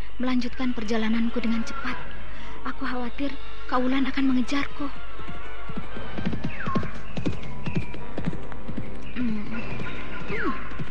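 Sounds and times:
speech: 0.2 - 5.0
horse hooves clip-clopping: 5.2 - 10.8.

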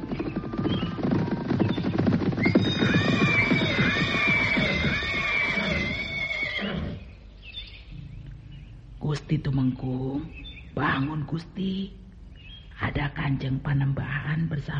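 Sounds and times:
dense low rumbling clatter of riders on horseback approaching: 0.0 - 6.6
horse whinnying as riders approach a hut: 2.4 - 7.1
speech: 9.3 - 12.0, 12.8 - 14.7.

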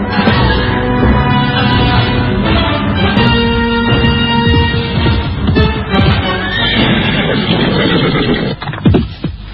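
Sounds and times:
hooves shuffling: 0.2 - 9.4
horse neighing: 6.1 - 8.7.

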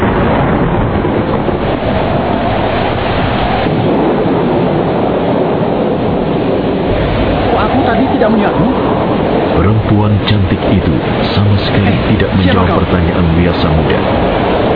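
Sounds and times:
heavy rain lashed by strong wind: 0.0 - 14.7.

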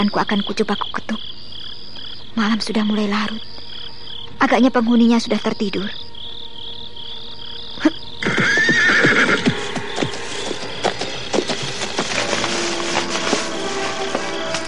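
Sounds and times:
speech: 0.0 - 1.3, 2.4 - 3.5, 4.4 - 6.0
horse neighing loudly near a hut at night: 8.2 - 9.6
horse hooves stamping: 8.2 - 14.6.

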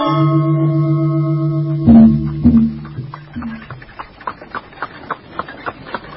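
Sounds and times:
long droning horn-like tones of a funeral procession: 0.1 - 3.8.

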